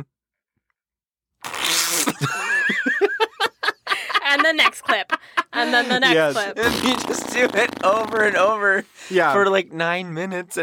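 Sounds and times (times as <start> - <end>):
short raspy fart: 1.4 - 2.3, 6.6 - 8.4
laughter: 2.1 - 8.0
speech: 5.7 - 10.6.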